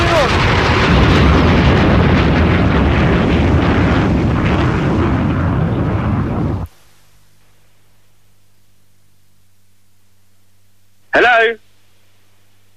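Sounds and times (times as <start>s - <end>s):
incoming missile explosion in a video game: 0.0s - 6.7s.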